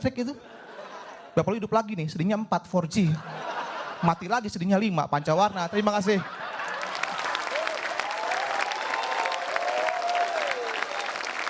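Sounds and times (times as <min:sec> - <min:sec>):
speech: 0:00.0 - 0:00.6, 0:01.4 - 0:06.4
laughter: 0:00.3 - 0:01.5, 0:03.1 - 0:04.3, 0:05.2 - 0:11.4
audience applause: 0:06.4 - 0:11.4.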